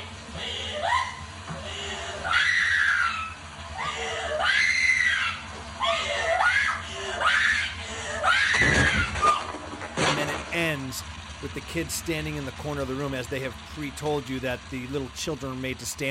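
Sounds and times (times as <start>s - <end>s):
woman's shrill piercing blood-curdling screams: 0.4s - 9.5s
speech: 11.0s - 16.1s.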